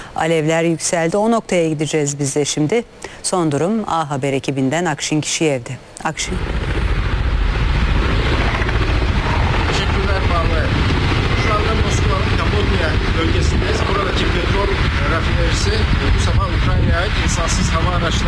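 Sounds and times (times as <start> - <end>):
speech: 0.2 - 6.8
helicopter rotor roar over a burning refinery: 6.2 - 18.2.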